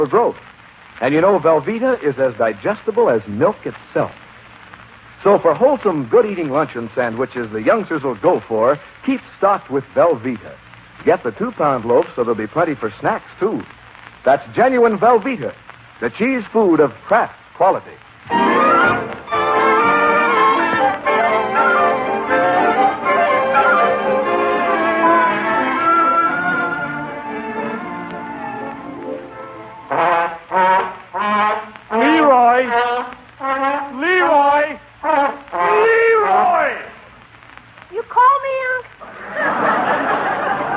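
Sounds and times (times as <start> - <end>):
speech: 0.0 - 4.2, 5.2 - 19.1
old school trombone played badly with off-key notes and squawking blasts: 18.3 - 36.5
laughter: 39.0 - 40.7.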